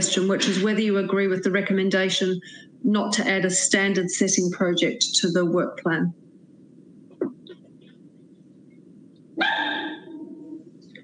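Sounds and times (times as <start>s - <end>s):
speech: 0.0s - 6.2s
low hum: 0.0s - 11.0s
dog barking: 9.4s - 10.2s.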